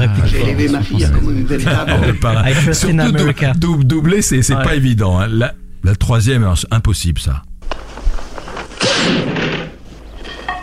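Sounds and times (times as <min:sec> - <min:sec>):
laughter: 0:00.0 - 0:04.5
speech: 0:00.2 - 0:07.5, 0:09.0 - 0:09.3
single loud gunshot: 0:08.8 - 0:09.8.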